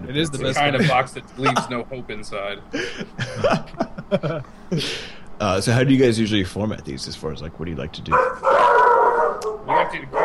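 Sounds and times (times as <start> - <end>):
speech: 0.1 - 8.7
laughter: 0.6 - 1.8, 2.7 - 5.1
dogs howling with a drawn-out whining howl: 8.1 - 10.2.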